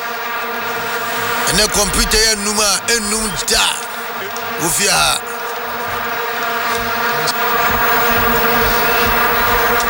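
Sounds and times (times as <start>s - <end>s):
mosquito buzzing: 0.0s - 9.8s
speech: 1.5s - 5.3s.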